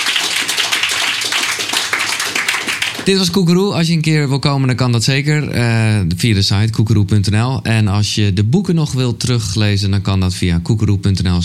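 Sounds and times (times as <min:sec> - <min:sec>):
audience applause for a guest: 0:00.0 - 0:03.2
speech: 0:03.1 - 0:11.4.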